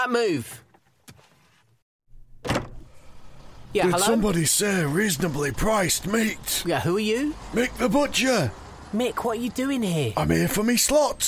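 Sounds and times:
speech: 0.0 - 0.6, 3.7 - 11.2
door opening: 2.3 - 3.0.

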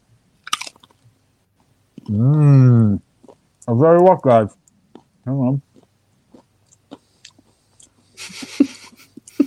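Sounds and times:
softer crackling chews of a cracker: 0.4 - 8.2
speech: 2.1 - 3.0, 3.6 - 4.6, 5.3 - 5.7
laughter: 8.2 - 9.4.

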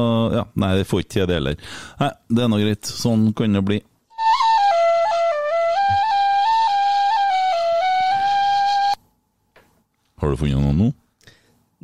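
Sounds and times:
speech: 0.0 - 3.9, 10.2 - 11.0
whistled melody: 4.1 - 9.0.

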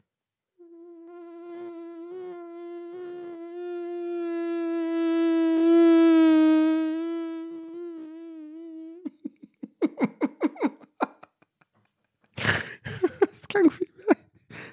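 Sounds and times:
person vocally imitating a rolling walker with a buzzing drone: 0.6 - 9.2
laughter: 9.1 - 14.4
person talking: 13.0 - 14.2.

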